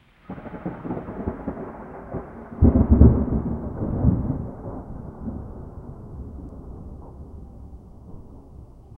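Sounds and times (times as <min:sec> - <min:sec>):
sharp crack of thunder: 0:00.0 - 0:08.9.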